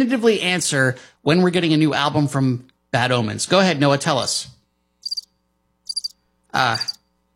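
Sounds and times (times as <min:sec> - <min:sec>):
speech: 0:00.0 - 0:04.6, 0:06.5 - 0:07.0
high cricket chirps: 0:05.0 - 0:05.3, 0:05.9 - 0:07.0.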